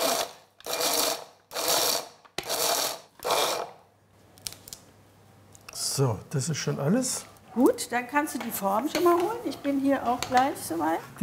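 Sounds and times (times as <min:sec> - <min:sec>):
grinder whirring while grinding walnut kernels with sugar: 0:00.0 - 0:03.8
speech: 0:06.0 - 0:11.2.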